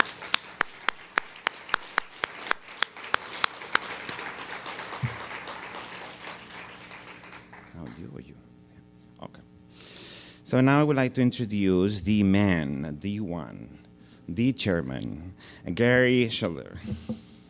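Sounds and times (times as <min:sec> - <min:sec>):
audience applause: 0:00.0 - 0:08.2
sharp rhythmic claps: 0:00.0 - 0:08.2
speech: 0:10.5 - 0:17.3.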